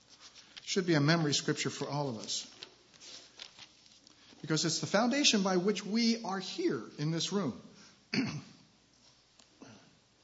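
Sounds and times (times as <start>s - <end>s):
speech: 0.7s - 2.6s, 4.5s - 8.5s
cough or throat clearing: 8.1s - 8.7s.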